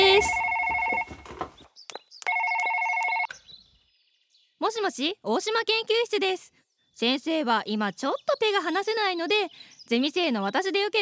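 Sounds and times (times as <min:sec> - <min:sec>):
telephone ringing with electronic trill: 0:00.0 - 0:01.4, 0:02.3 - 0:03.3
speech: 0:04.7 - 0:11.0.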